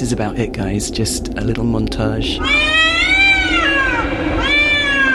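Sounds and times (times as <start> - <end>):
speech: 0.1 - 2.6
cat yowling as someone treads on its tail: 2.4 - 5.1.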